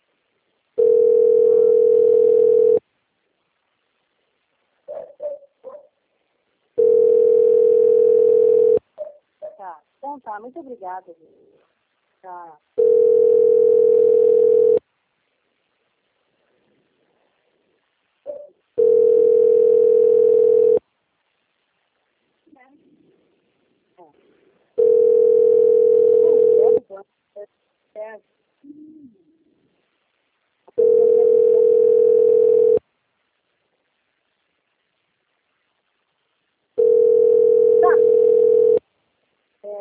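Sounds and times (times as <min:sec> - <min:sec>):
faint scattered sounds: 0:00.0 - 0:39.7
telephone dial tone while placing a call: 0:00.8 - 0:02.8, 0:06.8 - 0:08.8, 0:12.8 - 0:14.8, 0:18.8 - 0:20.8, 0:24.8 - 0:26.8, 0:30.8 - 0:32.8, 0:36.8 - 0:38.8
speech: 0:10.3 - 0:11.5, 0:12.2 - 0:12.7.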